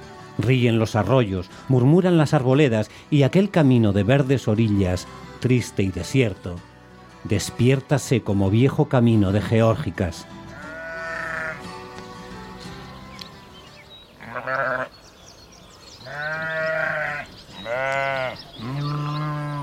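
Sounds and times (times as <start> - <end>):
speech: 0.4 - 10.4
flock of sheep bleating while climbing a mountainside: 10.5 - 11.9, 14.2 - 15.0, 16.0 - 19.6.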